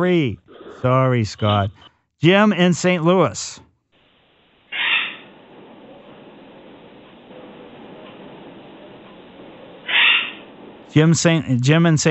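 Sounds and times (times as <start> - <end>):
speech: 0.0 - 3.6, 10.9 - 12.1
pet bird squawking: 4.7 - 5.4, 9.8 - 10.5.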